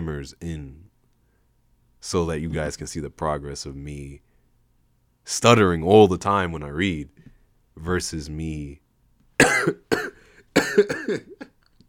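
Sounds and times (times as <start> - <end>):
speech: 0.0 - 0.8, 2.0 - 4.3, 5.3 - 7.2, 7.8 - 8.8, 9.6 - 9.9, 10.8 - 11.4
harsh coughs: 9.4 - 11.6.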